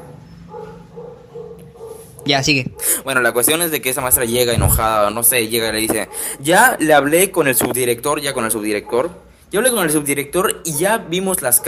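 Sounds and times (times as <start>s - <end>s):
dog barking: 0.0s - 3.0s, 5.9s - 6.5s, 8.7s - 9.4s, 11.4s - 11.6s
speech: 2.3s - 11.6s.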